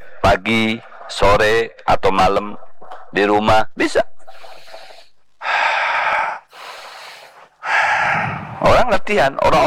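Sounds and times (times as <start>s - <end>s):
speech: 0.3s - 4.5s, 8.6s - 9.6s
deep controlled breathing in a breath-regulation exercise: 4.2s - 8.8s.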